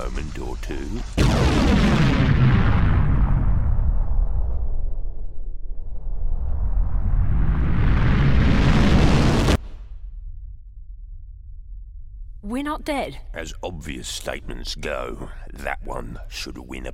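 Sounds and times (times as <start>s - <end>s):
speech: 0.0s - 2.3s, 12.8s - 16.9s
bomb explosion held inside a time field and rewound: 1.0s - 11.8s.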